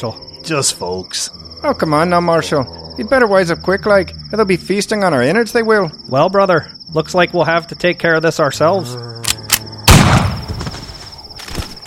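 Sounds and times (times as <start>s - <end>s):
speech: 0.0s - 9.1s
loud gunshot in a western-style shootout: 9.9s - 10.6s.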